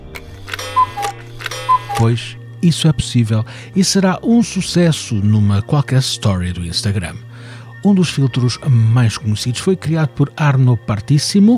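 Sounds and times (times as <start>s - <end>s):
cuckoo clock mechanical ticking: 0.1s - 2.2s
cuckoo clock calling a two-note cuckoo: 0.4s - 2.4s
speech: 2.0s - 11.5s.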